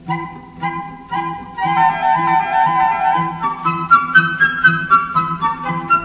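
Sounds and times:
silly orchestral flute melody: 0:00.0 - 0:06.0.

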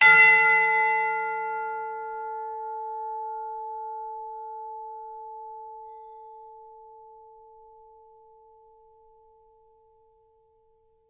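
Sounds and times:
tubular bell ringing long: 0:00.0 - 0:04.1.

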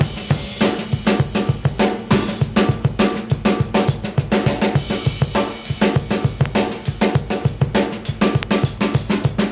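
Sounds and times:
crunchy rock drum loop: 0:00.0 - 0:09.5.

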